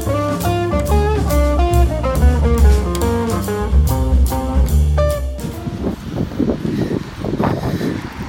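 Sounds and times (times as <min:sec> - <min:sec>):
melodic music: 0:00.0 - 0:06.0
strong gusty wind buffeting the microphone: 0:04.1 - 0:08.2.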